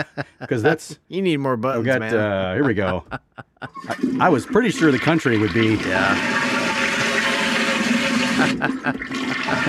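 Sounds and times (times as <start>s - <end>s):
laughter: 0.0s - 0.9s, 1.8s - 4.5s, 8.2s - 9.6s
speech: 0.0s - 6.5s, 8.4s - 9.6s
toilet flushing with rush of water and gurgling: 3.7s - 9.6s.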